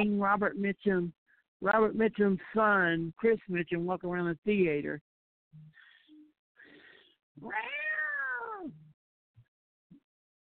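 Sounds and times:
speech: 0.0s - 5.7s, 7.4s - 7.8s
kitten mewing: 7.4s - 8.8s.

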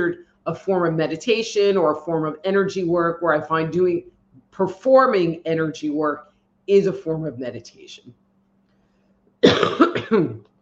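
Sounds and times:
speech: 0.0s - 8.2s, 9.4s - 10.5s
person coughing: 9.4s - 10.4s.

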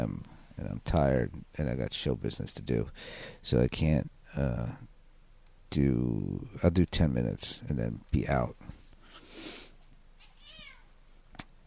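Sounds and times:
speech: 0.0s - 4.9s, 5.7s - 8.8s
cat meowing for food: 10.2s - 10.9s.

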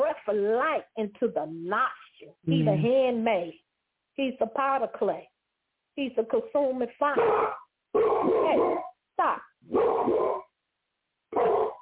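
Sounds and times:
speech: 0.3s - 3.6s, 4.2s - 5.3s, 6.0s - 10.4s
dog barking indoors: 7.2s - 8.9s, 9.7s - 10.5s, 11.3s - 11.7s.

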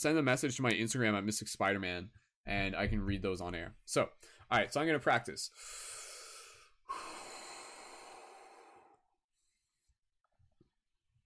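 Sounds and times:
speech: 0.0s - 5.9s
person breathing in deeply: 5.5s - 9.9s.

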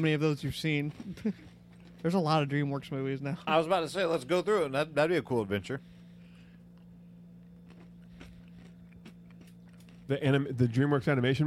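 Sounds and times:
speech: 0.0s - 6.0s, 10.1s - 11.4s
person chewing food: 6.6s - 10.1s.

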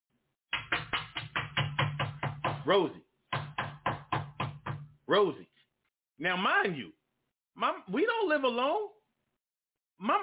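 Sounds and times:
voice imitating pounding on a front door: 0.5s - 2.7s, 3.3s - 5.0s
speech: 2.6s - 3.1s, 5.1s - 5.5s, 6.2s - 7.0s, 7.6s - 9.0s, 10.0s - 10.2s.

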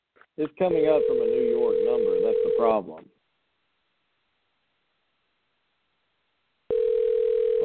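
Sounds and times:
speech: 0.4s - 3.2s
steady phone line tone on an unanswered call: 0.9s - 2.8s, 6.7s - 7.6s.

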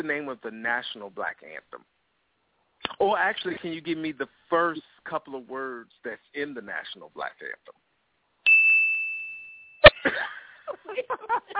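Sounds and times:
speech: 0.0s - 2.0s, 2.8s - 7.8s, 10.0s - 11.5s
bright bell ding signaling a wrong answer in a quiz: 8.5s - 10.0s
laughter: 9.9s - 11.5s.

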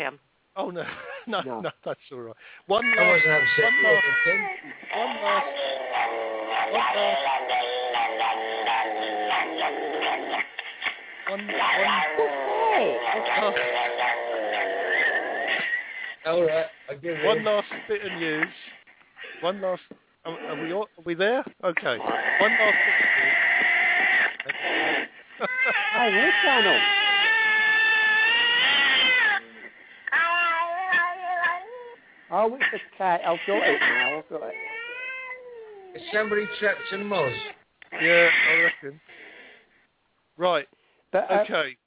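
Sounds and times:
speech: 0.0s - 7.7s, 11.3s - 14.4s, 16.2s - 18.7s, 19.4s - 23.0s, 25.4s - 27.0s, 32.3s - 34.7s, 35.9s - 39.2s, 40.4s - 41.8s
upset cat yowling with long wavering wails: 2.7s - 10.4s, 11.3s - 15.8s, 22.1s - 32.0s, 32.6s - 38.8s.

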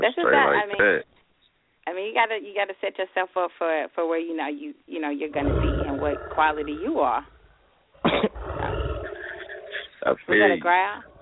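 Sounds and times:
short voiced vocal sounds: 0.0s - 1.0s, 9.4s - 10.7s
speech: 2.2s - 7.4s, 10.0s - 11.1s
low rough growl: 5.4s - 10.3s, 11.0s - 11.1s.

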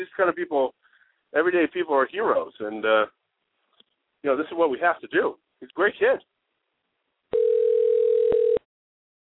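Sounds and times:
speech: 0.0s - 3.2s, 4.2s - 6.3s
electronic phone ring tone over the line: 7.3s - 8.7s.

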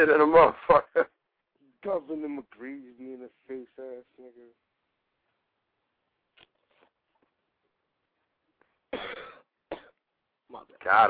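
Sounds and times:
speech: 0.0s - 1.2s, 1.8s - 4.6s, 10.5s - 11.0s
raspy coughing: 8.9s - 10.0s.

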